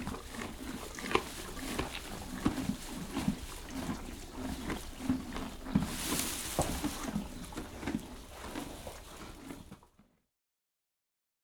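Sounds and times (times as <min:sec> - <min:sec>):
Canadian horses crunching and chewing hay: 0:00.0 - 0:10.1
dry rustling of hay: 0:05.7 - 0:07.2.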